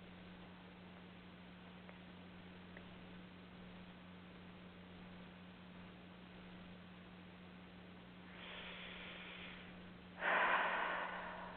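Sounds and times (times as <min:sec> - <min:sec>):
deep breath in during a deep-breathing relaxation exercise: 0:08.3 - 0:11.5.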